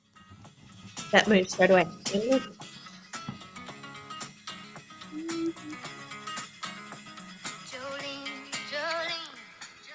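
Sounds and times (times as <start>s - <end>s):
speech: 1.1s - 2.6s
bright guitar lick with picked notes and bends: 5.0s - 6.5s.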